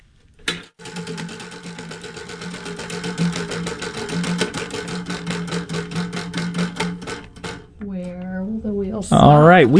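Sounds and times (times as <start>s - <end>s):
prize wheel spinning with loud mechanical ticks: 0.8s - 7.8s.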